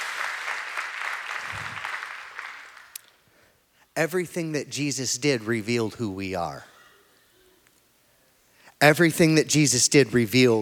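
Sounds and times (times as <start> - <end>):
audience applause: 0.0 - 3.0
speech: 4.0 - 6.7, 8.8 - 10.6.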